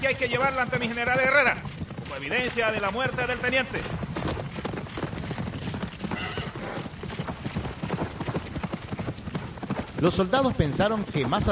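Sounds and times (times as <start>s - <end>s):
speech: 0.0s - 4.1s, 10.0s - 11.5s
galloping horse hooves clip-clopping on hard ground: 0.0s - 11.5s.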